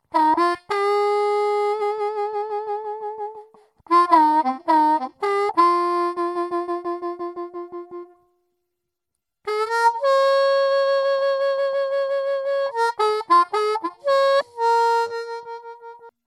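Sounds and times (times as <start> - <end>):
Turboharp harmonica in Bb: 0.1 - 8.2, 9.5 - 16.2.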